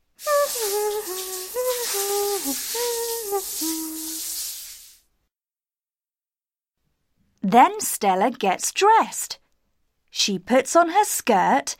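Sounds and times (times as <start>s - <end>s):
shower water spray running: 0.0s - 5.1s
person humming a simple melody: 0.2s - 4.2s
speech: 7.5s - 9.4s, 10.2s - 11.7s.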